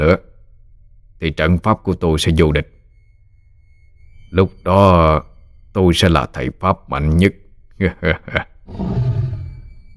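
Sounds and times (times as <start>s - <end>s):
speech: 0.0s - 0.3s, 1.2s - 2.8s, 4.3s - 9.2s
tiger roaring loudly with a low rough growl: 8.7s - 9.7s.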